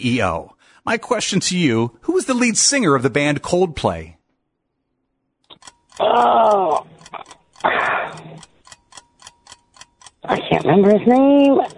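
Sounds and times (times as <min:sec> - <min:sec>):
speech: 0:00.0 - 0:04.2, 0:06.0 - 0:08.2, 0:10.2 - 0:11.7
quiz game countdown timer ticking: 0:05.5 - 0:11.7.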